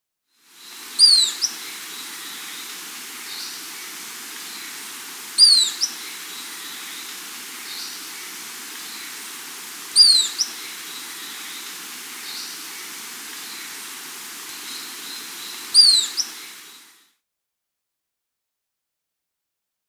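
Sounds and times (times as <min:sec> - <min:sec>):
Ruddy-tailed Flycatcher Terenotriccus erythrurus calling in Peru: 0:00.6 - 0:09.3, 0:09.9 - 0:13.8, 0:14.6 - 0:16.8.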